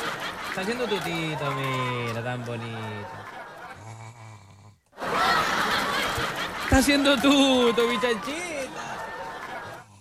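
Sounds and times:
laughter: 0.0 - 4.3, 5.0 - 10.0
speech: 0.6 - 3.4, 6.7 - 8.5
sleeping turtle snoring: 3.8 - 4.9.

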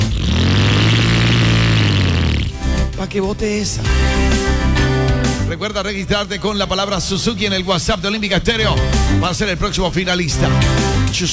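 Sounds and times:
motorcycle engine revving: 0.0 - 2.9
speech: 3.1 - 11.3.

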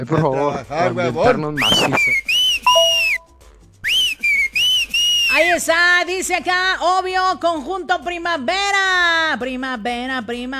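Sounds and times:
speech: 0.0 - 2.3, 5.4 - 10.5
shrill whistle sound effects: 1.6 - 5.6.

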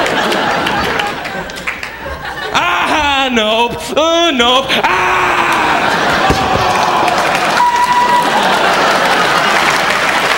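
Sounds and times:
crowd applauding: 0.0 - 2.5, 5.6 - 10.3
laughter: 0.0 - 10.3
indistinct voices: 0.8 - 8.4
speech: 3.3 - 5.0.

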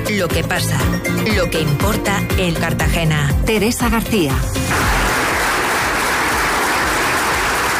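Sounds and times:
speech: 0.2 - 5.0
large audience applauding: 4.7 - 7.7.

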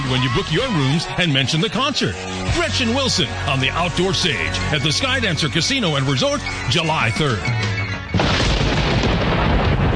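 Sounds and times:
speech: 0.1 - 7.7
deep rumble of thunder from an approaching storm: 8.2 - 9.9.

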